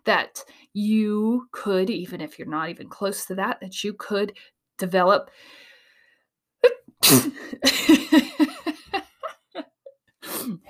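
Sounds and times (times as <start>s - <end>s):
speech: 0.0s - 5.7s, 6.6s - 8.5s
person sneezing: 7.0s - 7.6s.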